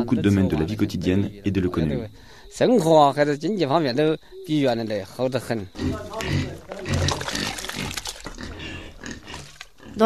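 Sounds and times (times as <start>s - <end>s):
speech: 0.0s - 7.0s
pigs grunting and snorting while being fed on a farm: 5.6s - 10.0s
wet sloshing and splashing: 5.9s - 9.8s.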